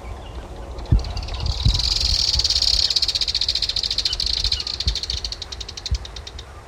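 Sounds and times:
Buff-bridled Inca finch calling: 0:00.2 - 0:06.6.

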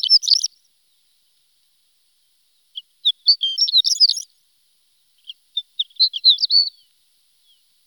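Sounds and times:
horned lark song: 0:00.0 - 0:01.2, 0:02.7 - 0:04.4, 0:05.2 - 0:07.8.

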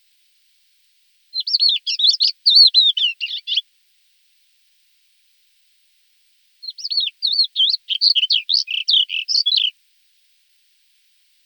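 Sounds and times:
Thekla's lark singing: 0:01.3 - 0:03.6, 0:06.6 - 0:09.7.

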